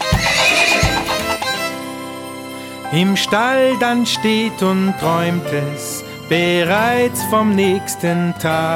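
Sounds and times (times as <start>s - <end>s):
pony neighing: 0.1s - 1.5s
pony galloping hoof thuds: 0.2s - 1.4s
speech: 2.9s - 8.7s.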